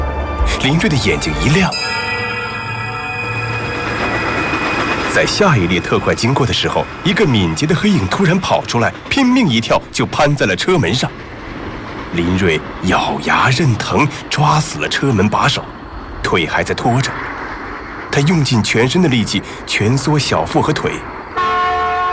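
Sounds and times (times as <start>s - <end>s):
bell-like ringing tones: 0.0s - 9.7s
express train rushing past at a station: 0.0s - 22.1s
people talking: 0.4s - 1.9s, 5.1s - 11.2s, 12.1s - 17.2s, 18.1s - 21.1s.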